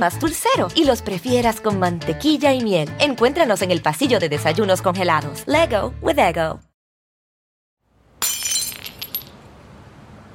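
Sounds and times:
speech: 0.0 - 6.7
building window glass shattering as a person jumps through: 8.2 - 9.4
glass fragments tinkling: 8.2 - 9.4.

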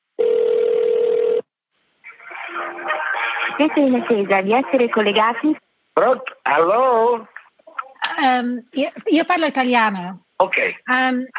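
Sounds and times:
telephone ringback tone over a phone line: 0.2 - 1.4
laughter: 2.1 - 5.1
speech: 3.6 - 7.3, 8.2 - 11.3.

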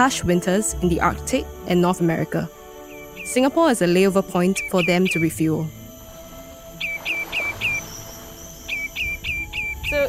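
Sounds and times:
speech: 0.0 - 2.6, 3.2 - 5.8
faint steady outdoor hum: 0.0 - 10.0
migratory birds chirping at a wetland reserve in Singapore: 0.0 - 10.0.

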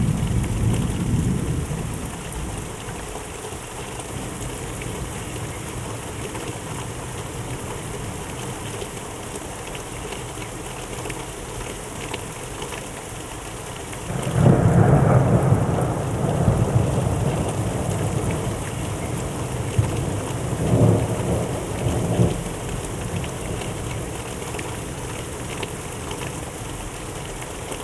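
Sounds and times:
deep rumbles of thunder: 0.0 - 2.7, 14.1 - 24.1
steady dense rain in a thunderstorm: 0.0 - 27.8.

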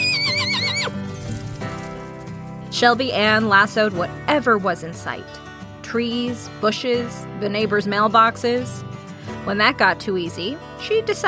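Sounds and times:
pony whinnying: 0.0 - 1.0
pony hoofbeats galloping: 0.0 - 2.6
speech: 2.8 - 8.9, 9.5 - 11.2.

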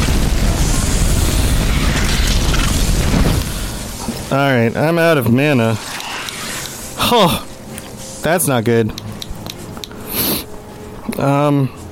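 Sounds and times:
glowing creature exploding in a fantasy wizard video game: 0.0 - 4.0
speech: 4.3 - 6.0, 7.1 - 7.5, 8.2 - 9.0, 11.2 - 11.8.

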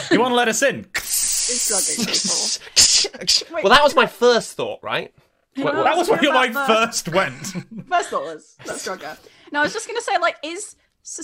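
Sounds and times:
speech: 0.1 - 11.2
voice imitating a spray bottle hiss: 1.0 - 3.5
laughter: 5.9 - 9.2.

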